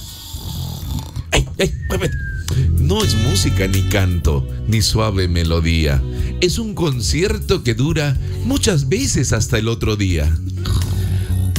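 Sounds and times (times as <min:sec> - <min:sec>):
loud rasping snores at night: 0:00.0 - 0:01.4, 0:10.5 - 0:11.5
speech: 0:01.6 - 0:10.8.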